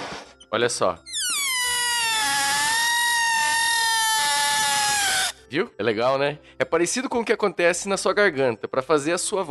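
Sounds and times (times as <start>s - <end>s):
speech: 0.5s - 1.1s, 5.5s - 9.4s
air escaping a birthday balloon's stretched neck in a high-pitched squeal: 1.1s - 5.4s.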